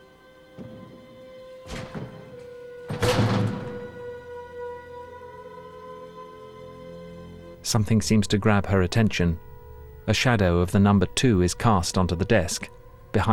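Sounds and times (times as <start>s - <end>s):
low steady hum: 0.0s - 13.3s
stuck desk drawer yanked with wooden jolts: 0.6s - 4.2s
speech: 7.7s - 9.5s, 10.1s - 13.3s.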